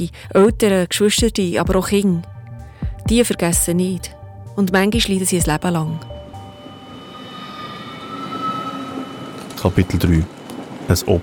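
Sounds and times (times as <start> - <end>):
speech: 0.0 - 2.3, 3.1 - 6.1, 9.6 - 11.2
low mechanical drone on a train station platform: 1.6 - 10.6
faint high tonal whines from a train: 4.6 - 11.2.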